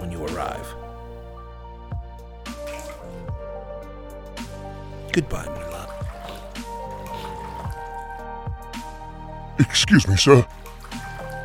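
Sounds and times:
speech: 0.1s - 0.9s, 5.2s - 5.8s, 9.6s - 10.6s
blood dripping from a person's arms: 2.5s - 3.4s, 5.2s - 8.3s, 9.6s - 11.4s.

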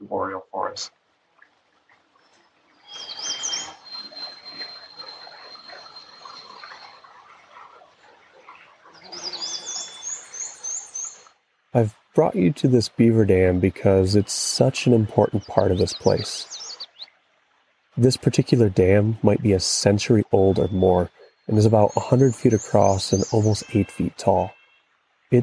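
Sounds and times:
soft steady chorus of outdoor sound: 0.0s - 25.4s
speech: 0.1s - 1.0s, 11.7s - 16.6s, 18.0s - 24.6s
warbler songbirds singing in northern forest: 2.1s - 11.3s, 14.9s - 17.2s, 20.2s - 24.8s.

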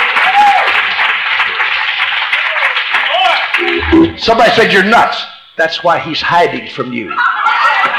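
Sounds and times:
audience clapping in praise of the Lord: 0.0s - 3.6s
speech: 4.0s - 7.9s.

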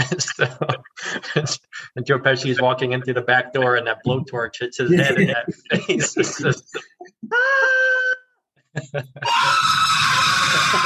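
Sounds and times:
laughter: 0.0s - 1.7s, 4.9s - 10.8s
speech: 0.0s - 8.2s, 8.8s - 10.8s
man screaming in a Christmas comedy film scene: 7.3s - 8.3s, 9.2s - 10.8s.

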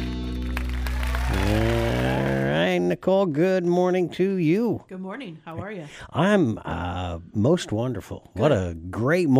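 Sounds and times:
applause: 0.0s - 2.6s
speech: 2.9s - 9.3s.

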